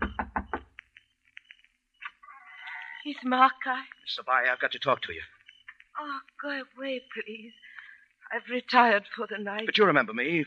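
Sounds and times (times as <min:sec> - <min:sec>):
knocking on the door of a house in the hills at night: 0:00.0 - 0:00.7
speech: 0:03.0 - 0:05.4, 0:06.0 - 0:10.4.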